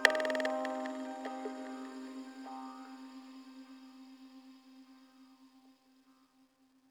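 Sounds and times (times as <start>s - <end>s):
piano one-shot: 0.1s - 2.1s.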